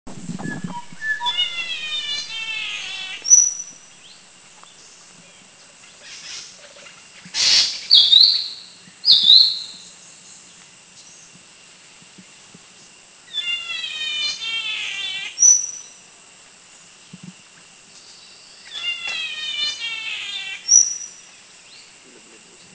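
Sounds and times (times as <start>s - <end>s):
Spangled Drongo calling in Bohol Philippines: 0.1s - 9.8s, 13.3s - 15.9s, 18.6s - 21.2s.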